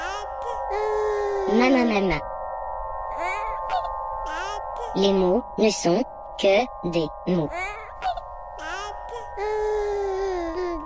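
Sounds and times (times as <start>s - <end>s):
recorded baby crying and babbling: 0.0s - 1.9s, 3.1s - 5.2s, 7.4s - 10.8s
speech: 1.5s - 2.3s, 5.0s - 7.7s.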